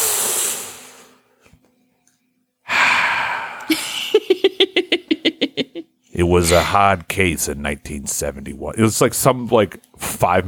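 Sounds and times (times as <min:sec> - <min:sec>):
laughter: 0:03.7 - 0:06.7
voice imitating cigarette smoking inhale and exhale: 0:06.2 - 0:06.9
speech: 0:06.3 - 0:10.4.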